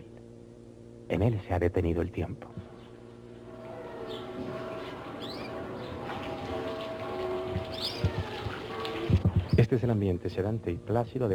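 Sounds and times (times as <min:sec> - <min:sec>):
speech: 0:01.1 - 0:02.7, 0:09.7 - 0:11.3
birds chirping in a small house garden: 0:02.6 - 0:09.6
distant small bell ringing: 0:03.5 - 0:09.2
water flowing in a garden fountain: 0:03.5 - 0:09.8.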